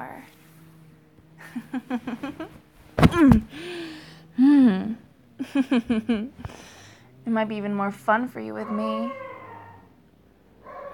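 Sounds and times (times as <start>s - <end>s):
speech: 1.5s - 2.5s, 3.2s - 3.8s, 5.6s - 9.3s
dogs barking and yipping: 8.6s - 10.0s, 10.6s - 10.9s.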